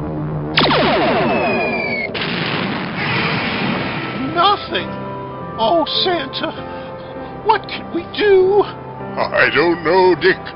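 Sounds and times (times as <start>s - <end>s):
weapon firing at double power with electronic zaps: 0.5s - 4.2s
speech: 5.6s - 6.8s, 7.4s - 10.5s.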